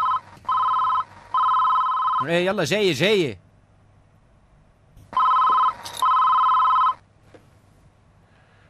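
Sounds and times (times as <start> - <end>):
telephone ringing with electronic trilling bell tone: 0.0 - 2.3, 5.1 - 7.0
speech: 2.2 - 3.4.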